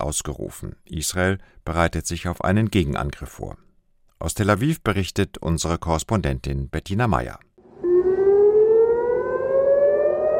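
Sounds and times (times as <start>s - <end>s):
speech: 0.0s - 3.6s, 4.2s - 7.5s
civil defense air raid siren wailing in Israel: 7.6s - 10.3s.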